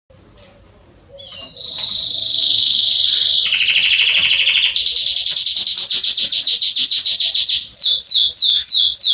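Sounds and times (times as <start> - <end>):
Belgian canary singing loud high rolling trills: 1.1 - 9.1.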